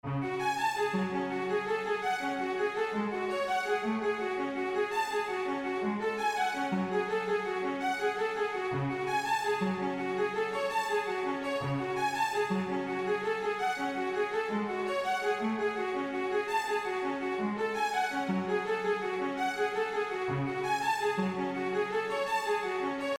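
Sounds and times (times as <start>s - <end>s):
synth arpeggio: 0.2s - 23.1s.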